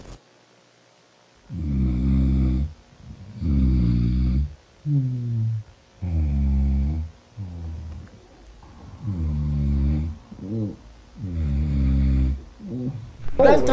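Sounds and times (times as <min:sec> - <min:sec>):
loud snoring: 0:01.5 - 0:08.0, 0:09.0 - 0:13.0.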